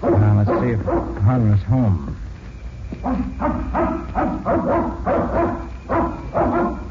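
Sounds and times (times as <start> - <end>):
dog barking at a house: 0.0 - 1.3, 3.0 - 6.8
speech: 0.6 - 2.1, 3.0 - 6.8.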